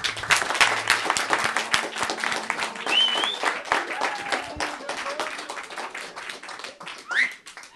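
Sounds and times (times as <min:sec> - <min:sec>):
crowd applauding: 0:00.0 - 0:07.7
laughter: 0:00.2 - 0:07.3
scattered whoops and voices: 0:02.9 - 0:05.2.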